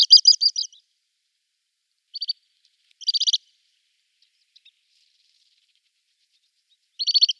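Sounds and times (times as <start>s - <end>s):
male little stint rattling calls in display flight: 0.0s - 0.8s, 2.1s - 2.4s, 3.0s - 3.5s, 4.1s - 7.3s.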